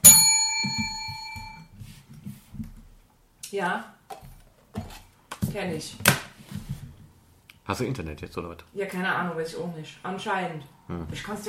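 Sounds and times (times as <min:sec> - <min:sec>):
bell-like notification chime announcing a message reply: 0:00.0 - 0:01.6
speech: 0:03.5 - 0:04.0, 0:05.5 - 0:06.2, 0:07.7 - 0:11.4.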